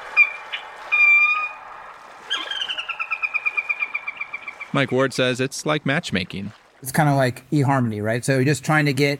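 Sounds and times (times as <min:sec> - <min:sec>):
recorded rail calls from playback loudspeaker: 0:00.0 - 0:05.1
speech: 0:04.7 - 0:09.1.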